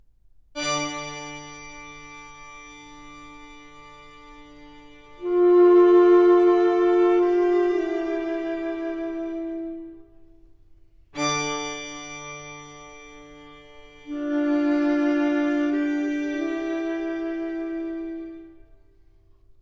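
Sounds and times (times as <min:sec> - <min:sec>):
alto saxophone and string quartet quintet: 0:03.6 - 0:10.4, 0:13.9 - 0:18.9.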